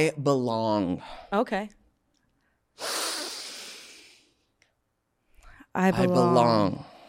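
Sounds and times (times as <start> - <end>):
speech: 0.0 - 1.8, 5.8 - 6.9
forceful breathy exhale during a guided breathing exercise: 2.8 - 4.4.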